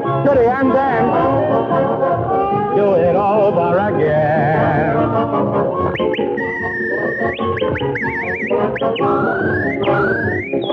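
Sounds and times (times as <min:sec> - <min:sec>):
dense busy music: 0:00.0 - 0:10.7
speech: 0:00.2 - 0:01.2
person whistling a tune: 0:05.8 - 0:10.7.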